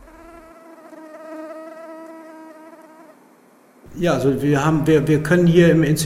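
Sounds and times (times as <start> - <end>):
many Anopheles mosquitoes buzzing in a cage: 0.0 - 3.5
speech: 3.9 - 6.0.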